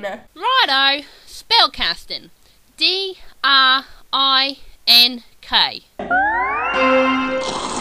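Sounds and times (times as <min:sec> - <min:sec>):
speech: 0:00.0 - 0:06.2
rising whistly tones: 0:06.1 - 0:07.7.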